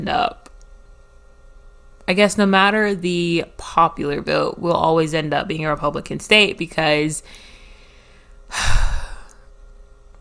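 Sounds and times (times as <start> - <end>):
speech: 0.0 - 0.4, 2.1 - 7.5, 8.5 - 8.9
breath exhaled into a microphone: 7.3 - 8.3.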